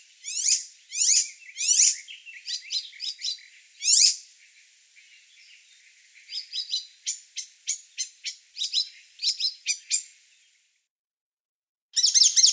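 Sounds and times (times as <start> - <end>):
Icterine warbler Hippolais icterina song: 0.0 - 10.7, 12.0 - 12.5.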